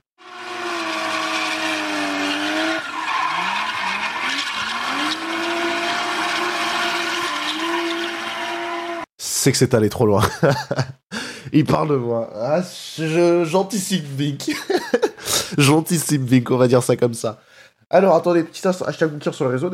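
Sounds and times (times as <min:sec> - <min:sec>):
car tires skidding: 0:00.2 - 0:09.1
speech: 0:09.4 - 0:14.8, 0:15.5 - 0:19.7
laughter: 0:10.2 - 0:11.0.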